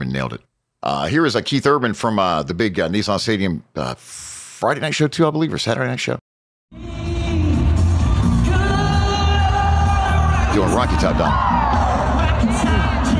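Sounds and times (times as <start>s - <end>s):
speech: 0.1s - 7.0s, 10.6s - 11.6s
huge crowd of country music fans screaming and whooping at a night concert: 7.9s - 13.1s
country music fans singing along in a stadium: 11.9s - 13.1s.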